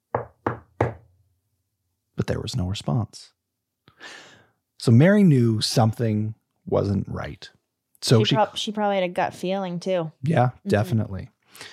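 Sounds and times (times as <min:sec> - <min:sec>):
knocking on a wooden door: 0:00.1 - 0:01.1
speech: 0:02.2 - 0:03.4, 0:04.0 - 0:11.7.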